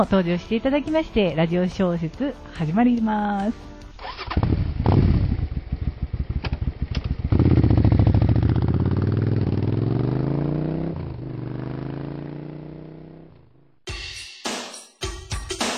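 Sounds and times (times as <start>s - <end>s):
speech: 0.0s - 4.2s
motorcycle engine starting and revving: 4.0s - 13.6s.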